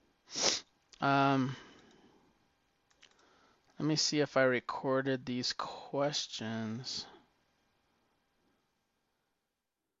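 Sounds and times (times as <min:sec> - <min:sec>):
sharp sniff through the nose from a person with bad allergies: 0:00.3 - 0:00.7
speech: 0:01.0 - 0:01.7, 0:03.8 - 0:07.1.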